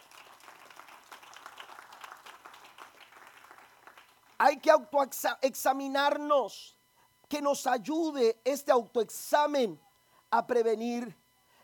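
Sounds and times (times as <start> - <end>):
audience applauding in a roomy space: 0.0 - 4.5
speech: 4.4 - 11.2.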